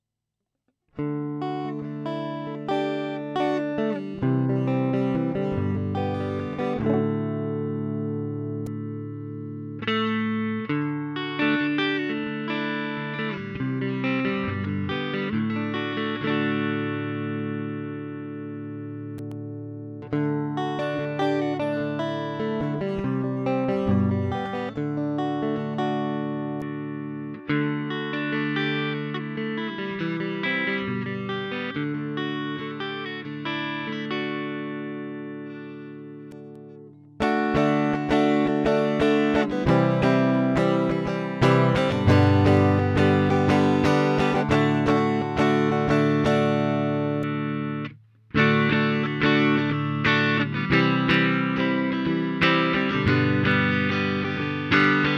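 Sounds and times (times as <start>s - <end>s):
Fender Bassman style guitar amplifier tone: 1.0s - 55.1s.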